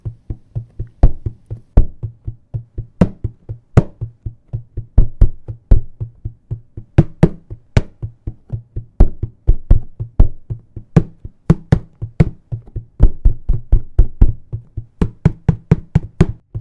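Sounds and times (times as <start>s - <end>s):
hand drumming on an upside-down container: 0.0s - 16.5s.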